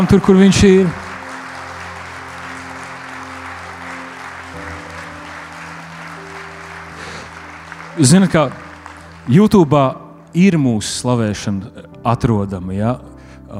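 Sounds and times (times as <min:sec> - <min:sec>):
speech: 0:00.0 - 0:01.0, 0:08.0 - 0:08.6, 0:09.3 - 0:13.5
crowd applauding for pastors: 0:00.0 - 0:10.0.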